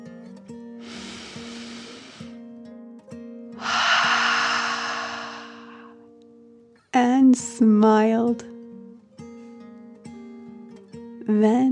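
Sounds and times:
deep breath in and out: 0:00.8 - 0:02.4, 0:03.6 - 0:06.0
speech: 0:07.4 - 0:08.5.

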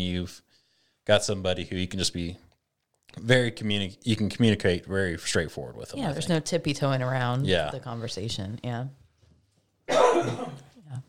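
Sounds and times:
speech: 0:00.0 - 0:02.4, 0:03.1 - 0:09.0
person coughing: 0:09.9 - 0:10.8.

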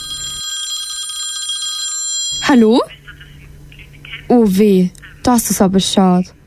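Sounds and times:
telephone ringing with a metallic trill: 0:00.0 - 0:02.9
speech: 0:02.5 - 0:03.0, 0:04.3 - 0:06.4.

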